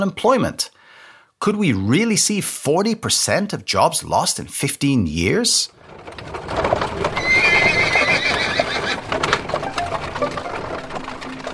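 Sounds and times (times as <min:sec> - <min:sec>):
speech: 0:00.0 - 0:00.8, 0:01.4 - 0:07.8
horse hooves clip-clopping: 0:05.8 - 0:11.5
horse whinnying with a long wavering neigh: 0:07.1 - 0:09.1.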